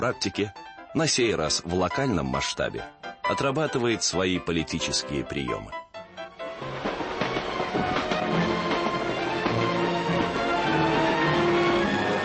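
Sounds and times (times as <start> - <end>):
speech: 0.0 - 5.8
train rolling along rails to San Francisco: 6.2 - 12.2.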